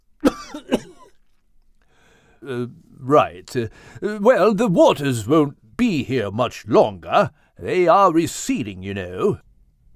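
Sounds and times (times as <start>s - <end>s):
person coughing harshly: 0.2s - 1.2s
speech: 2.4s - 9.9s.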